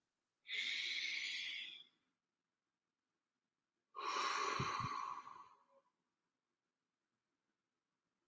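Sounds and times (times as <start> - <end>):
person taking a deep breath: 0.5 - 1.9, 4.0 - 5.6.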